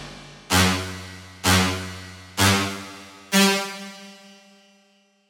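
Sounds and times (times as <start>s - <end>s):
dramatic brass music: 0.5s - 4.5s.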